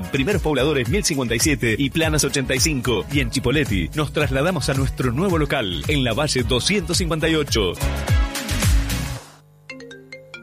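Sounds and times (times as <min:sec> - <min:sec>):
speech: 0:00.1 - 0:08.3
telephone ringing with a short electronic ringtone: 0:05.6 - 0:06.2, 0:09.7 - 0:10.4.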